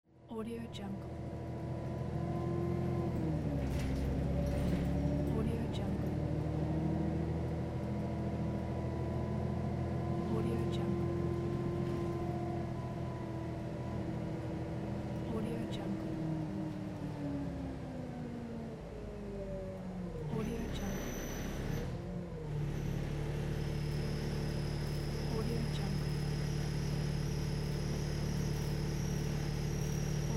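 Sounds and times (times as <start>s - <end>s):
moving bus interior ambience: 0.1s - 30.3s.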